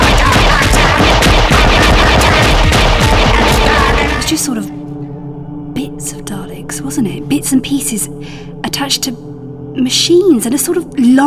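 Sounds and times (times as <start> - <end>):
automatic gunfire in a battle at a refueling station: 0.0 - 4.3
speech: 4.3 - 4.8, 6.8 - 11.2.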